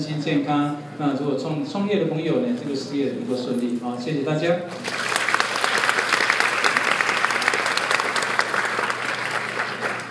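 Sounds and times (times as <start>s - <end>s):
speech: 0.0s - 5.0s
audience applause: 4.8s - 10.0s.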